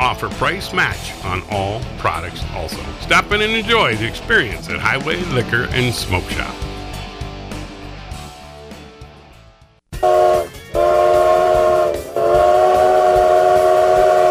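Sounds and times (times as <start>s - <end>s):
speech: 0.1s - 6.7s
train whistle blasts: 10.0s - 14.3s.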